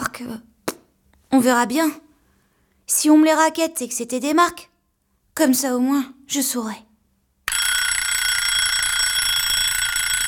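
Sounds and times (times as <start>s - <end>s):
speech: 0.2s - 0.5s, 1.3s - 2.1s, 2.9s - 4.7s, 5.4s - 6.9s
alarm clock ringing with a bright steady electronic tone: 7.5s - 10.2s.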